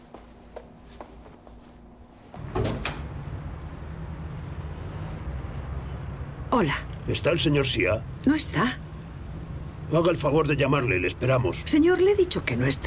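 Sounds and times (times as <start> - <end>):
door opened with clunk and rattle of the latch: 2.4 - 3.1
speech: 6.6 - 8.8, 9.9 - 12.8.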